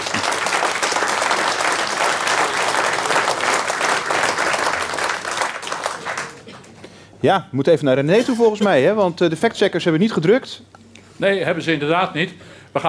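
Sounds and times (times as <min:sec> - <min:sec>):
large audience applauding after a debate: 0:00.0 - 0:06.8
speech: 0:07.2 - 0:12.8.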